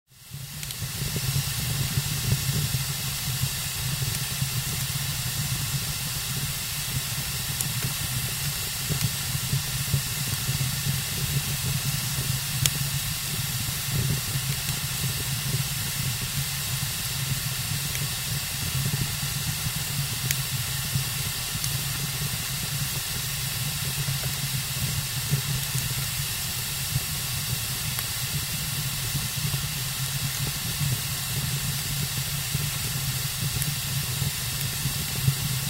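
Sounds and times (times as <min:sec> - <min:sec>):
damp firewood burning and hissing in a fireplace: 0:00.1 - 0:35.6.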